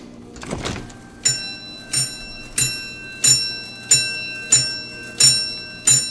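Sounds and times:
mechanical rattle of grip strength tester: 0.1 - 3.8
small bell dinging on 1920s grip strength tester: 1.2 - 6.0.

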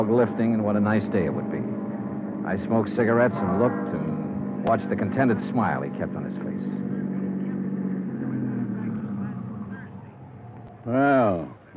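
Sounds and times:
speech: 0.0 - 1.6, 2.4 - 6.8, 10.9 - 11.7
car engine humming while driving up a driveway: 0.0 - 11.7.

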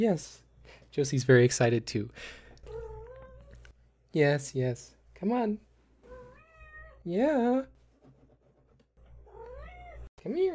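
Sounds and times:
speech: 0.0 - 2.4, 4.1 - 5.7, 7.0 - 7.8, 10.2 - 10.5
cat meowing: 6.1 - 7.0, 9.3 - 10.1.

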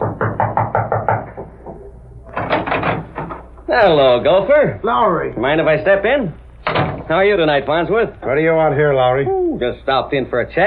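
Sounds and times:
knocking on a door: 0.0 - 3.4
speech: 3.7 - 6.4, 7.1 - 10.6.

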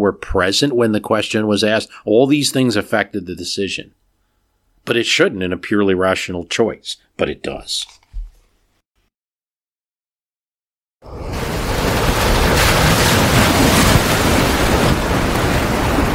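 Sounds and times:
speech: 0.0 - 4.0, 4.8 - 8.0
rough sea tossing a ship: 11.0 - 16.1
wind roaring over the ocean: 11.0 - 16.1.

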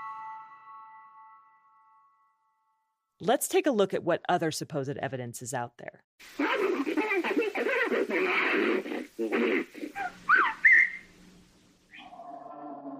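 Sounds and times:
speech: 3.2 - 7.0, 7.9 - 10.3
long steady drawn-out whistling call in the woods rising in pitch: 10.0 - 11.1.

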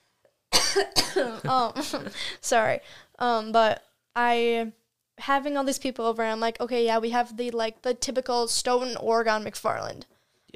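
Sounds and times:
person coughing: 0.5 - 2.3
speech: 0.8 - 10.5.

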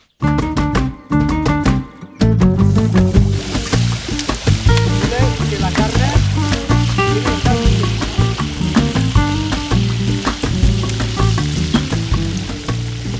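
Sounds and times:
tonal music: 0.3 - 13.1
paella pan bubbling and sizzling over fire: 2.6 - 13.1.

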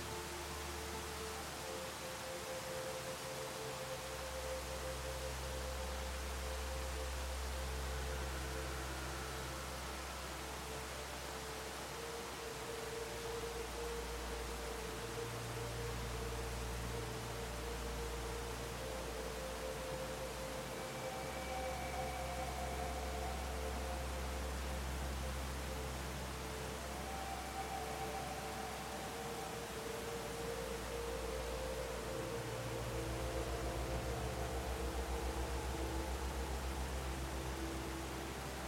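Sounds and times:
calm music with slow sustained low tones: 0.0 - 38.6
waterfall rushing: 0.0 - 38.6.

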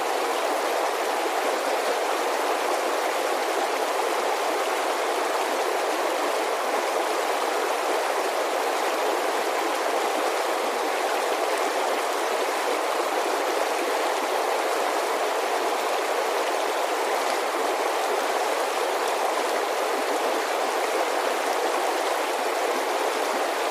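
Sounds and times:
alpine creek rushing over rocks: 0.0 - 23.6.

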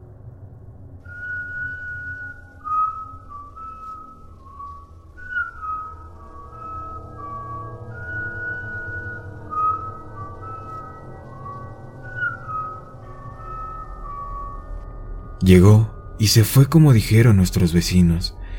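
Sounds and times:
low constant rumble: 0.0 - 18.5
person whistling a slow wavering tune at night: 1.1 - 14.7
speech: 15.5 - 18.4.

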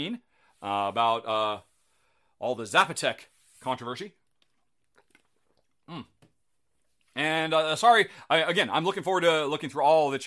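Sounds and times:
speech: 0.0 - 1.7, 2.4 - 4.2, 5.9 - 6.1, 7.2 - 10.2
soft lip smacks: 4.2 - 6.4
person sipping a drink: 4.2 - 7.1.

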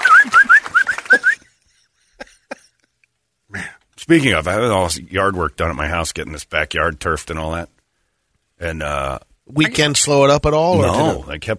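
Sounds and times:
short rising whistles like a wolf whistle: 0.0 - 1.5
speech: 4.1 - 7.8, 8.6 - 11.5.

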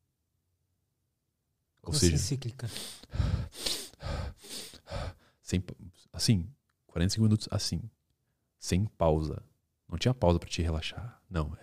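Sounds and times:
speech: 1.8 - 3.2, 5.5 - 8.0, 8.6 - 11.6
forceful breaths in through the nose and out through the mouth: 2.7 - 5.4.

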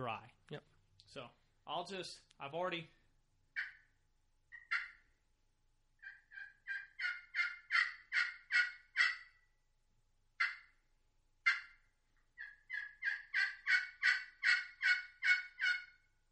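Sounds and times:
speech: 0.0 - 3.0
wild turkey clucking: 3.6 - 3.9, 4.5 - 5.2, 6.0 - 9.4, 10.4 - 10.8, 11.4 - 16.0.

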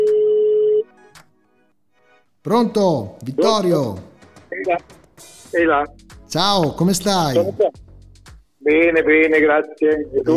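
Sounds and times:
outgoing telephone call ringback tone: 0.0 - 0.9
speech: 2.4 - 7.8, 8.6 - 10.3.

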